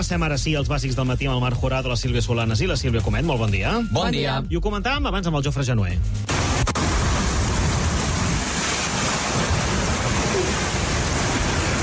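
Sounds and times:
speech: 0:00.0 - 0:06.6
downburst wind gust of cold air in L'Hospitalet de Llobregat: 0:06.3 - 0:11.8.

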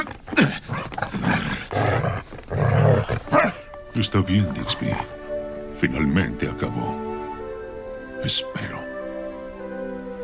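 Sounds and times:
dog growling and snarling: 0:00.0 - 0:03.7
speech: 0:04.0 - 0:05.2, 0:05.8 - 0:07.1, 0:08.2 - 0:08.9.

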